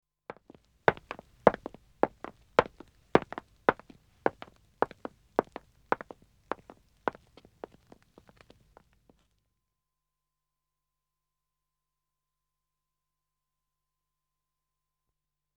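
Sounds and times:
two men walking on wood with dead acoustics: 0.3 - 8.9.

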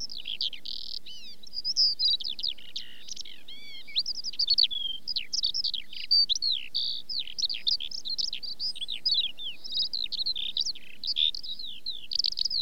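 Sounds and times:
Eurasian skylark singing: 0.0 - 12.6.

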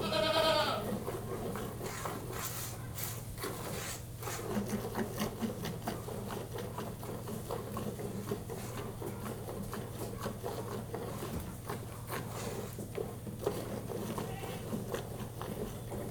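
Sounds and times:
goat bleating during milking: 0.0 - 1.0, 14.1 - 14.8
goat milking swishing and squirting: 0.8 - 16.1.

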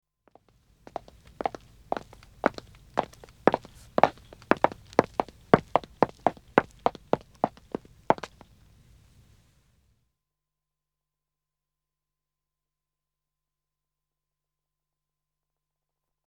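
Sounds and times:
woman walking on wood: 0.9 - 9.1.

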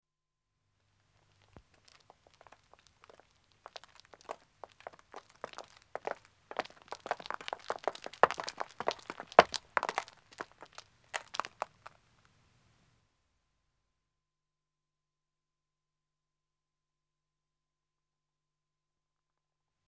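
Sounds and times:
two men walking on a country road: 1.4 - 12.0.

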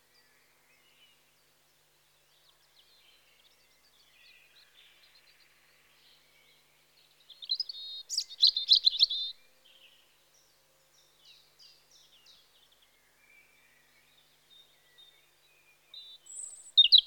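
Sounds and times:
European robin singing in spring: 7.3 - 9.8, 15.9 - 17.0.

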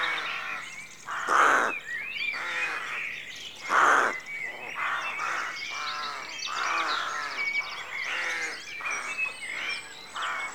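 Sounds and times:
rooks calling in raspy caws at a rookery at dawn: 0.0 - 1.8, 2.4 - 2.9, 3.6 - 4.2, 4.8 - 7.4
steady background chorus of rooks at a rookery: 0.0 - 10.5.

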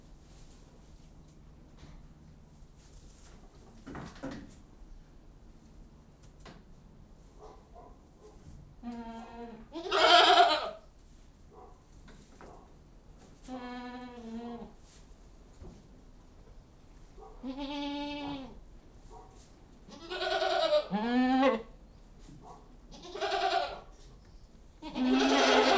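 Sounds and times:
goats bleating in a goat house: 8.8 - 10.8, 17.4 - 18.6, 19.9 - 21.7, 22.9 - 23.8, 24.8 - 25.7.

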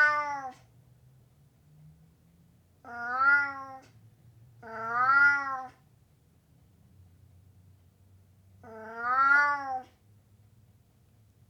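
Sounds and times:
Burmese cat meowing: 0.0 - 0.6, 2.9 - 4.0, 4.6 - 5.8, 8.6 - 10.0.

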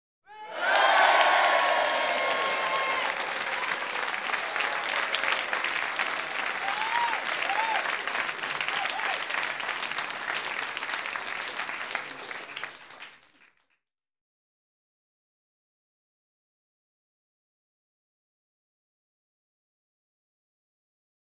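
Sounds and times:
light entertainment audience cheering into applause: 0.4 - 13.6.

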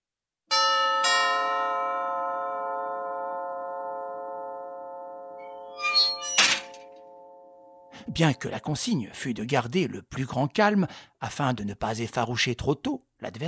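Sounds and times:
doorbell chiming: 0.5 - 8.7
speech: 8.1 - 13.4.

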